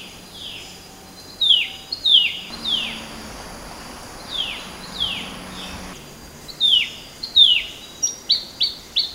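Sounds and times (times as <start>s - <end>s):
Temminck's babbler calls: 2.5s - 8.4s
faint steady high hiss: 2.5s - 8.8s.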